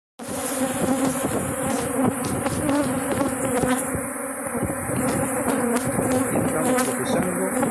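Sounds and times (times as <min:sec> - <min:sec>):
aggressive honey bees buzzing inside the hive: 0:00.2 - 0:07.6.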